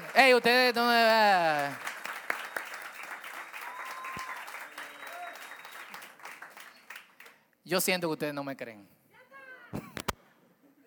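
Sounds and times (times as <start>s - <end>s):
speech: 0.2s - 1.9s, 7.7s - 9.0s
audience applause: 1.5s - 7.0s
faint whistles: 4.0s - 6.0s.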